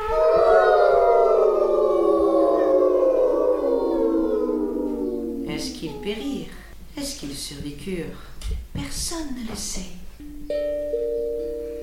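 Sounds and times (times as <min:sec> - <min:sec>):
wolves howling: 0:00.0 - 0:06.4
speech: 0:07.2 - 0:10.8.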